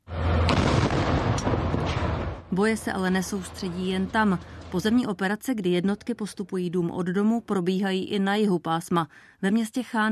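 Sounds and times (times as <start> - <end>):
constant heavy rumble: 0.0 - 5.3
gunfire from a school building: 0.2 - 2.5
speech: 2.6 - 10.1.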